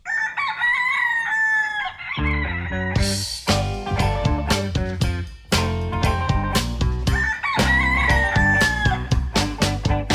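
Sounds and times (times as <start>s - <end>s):
rooster crowing: 0.0s - 3.3s, 7.1s - 9.2s
full band playing with drums and guitar: 2.9s - 10.1s.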